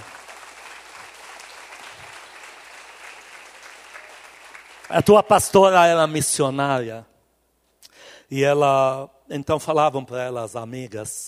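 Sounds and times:
audience applauding: 0.0 - 5.4
speech: 4.9 - 7.1, 8.3 - 11.2.

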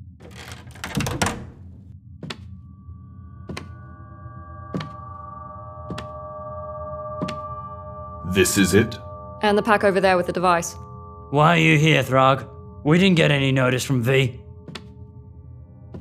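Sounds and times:
door opening with clunks and rattles: 0.2 - 2.5, 3.5 - 3.8, 4.7 - 5.0, 5.9 - 6.2, 14.6 - 15.0
speech: 8.3 - 14.4.

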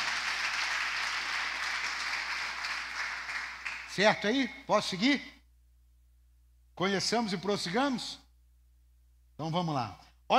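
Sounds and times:
audience applause: 0.0 - 3.9
speech: 4.0 - 5.3, 6.8 - 8.2, 9.4 - 10.3.

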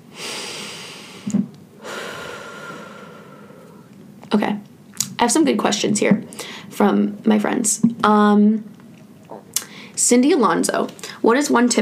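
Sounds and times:
person taking a deep breath: 0.0 - 3.9
speech: 5.2 - 8.8, 10.0 - 11.7.

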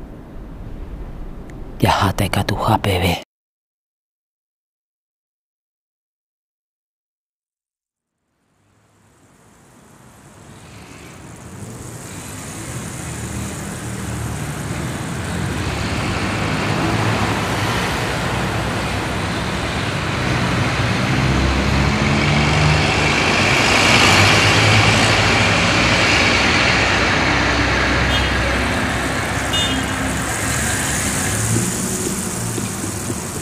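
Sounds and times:
speech: 1.8 - 3.2
city street traffic: 8.6 - 33.4
bus-like drone: 8.7 - 33.4.

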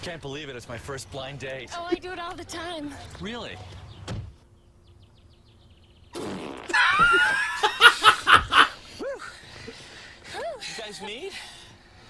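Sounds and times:
speech: 0.0 - 3.8, 7.0 - 7.8, 10.9 - 11.5
buzzy fart: 6.1 - 7.0
laughter: 6.7 - 11.3.

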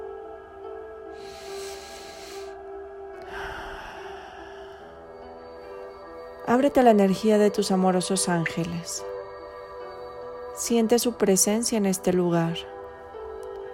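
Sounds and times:
soft steady drone: 0.0 - 13.7
person breathing deeply during a guided meditation: 1.1 - 6.2
speech: 6.5 - 9.1, 10.6 - 12.7.

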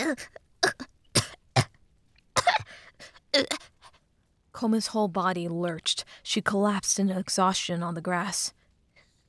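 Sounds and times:
speech: 0.1 - 0.4, 3.4 - 3.6, 4.6 - 8.6
person coughing and spluttering up water: 0.6 - 1.7.

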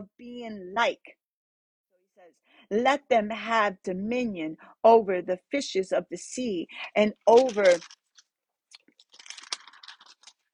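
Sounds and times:
speech: 0.0 - 1.2, 2.2 - 8.0
paper rustling as it gets stuck: 7.3 - 8.2, 8.8 - 10.5.

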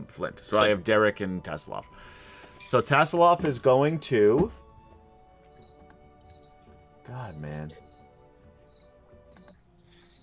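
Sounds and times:
speech: 0.1 - 4.6, 7.1 - 7.9
cricket chirping in high-pitched trills: 7.8 - 8.1, 8.7 - 10.2.

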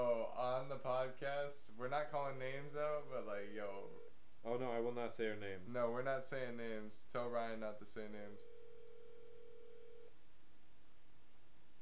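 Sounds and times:
speech: 0.0 - 8.6
faint hiss: 0.0 - 11.8
outgoing phone call ringing tone: 8.3 - 10.1.

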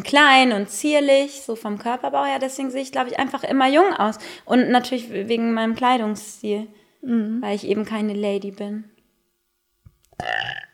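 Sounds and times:
speech: 0.0 - 8.9, 10.2 - 10.7
loud forced burp: 10.1 - 10.7.

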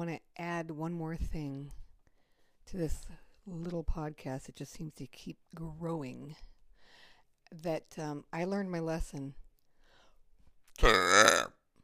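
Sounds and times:
speech: 0.0 - 1.8, 2.7 - 6.5, 7.5 - 9.4, 10.8 - 11.3
long loud throaty burp: 10.8 - 11.6.

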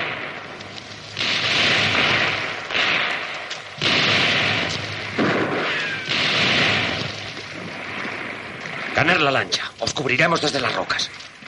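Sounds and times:
gunfire in a film shootout with militiamen firing from cliffs: 1.1 - 9.5
speech: 9.0 - 11.3.

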